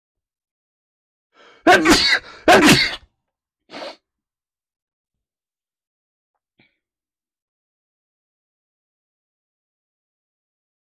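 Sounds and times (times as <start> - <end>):
person sneezing: 1.6 - 3.0, 3.7 - 4.0
sharp intake of breath: 3.7 - 4.0
sniff: 3.7 - 4.0.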